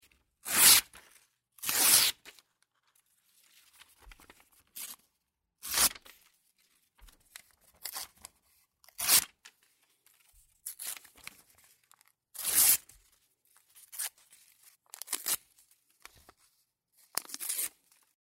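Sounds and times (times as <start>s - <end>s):
paper tearing: 0.4s - 1.0s, 1.6s - 2.3s, 5.6s - 6.1s, 8.9s - 9.3s, 12.4s - 12.8s, 17.2s - 17.8s.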